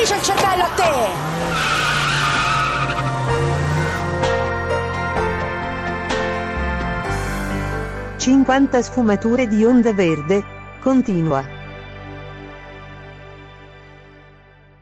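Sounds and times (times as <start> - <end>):
car tires screeching as the car speeds off: 0.0 - 8.4
car engine roaring: 0.0 - 9.0
speech: 8.2 - 11.6.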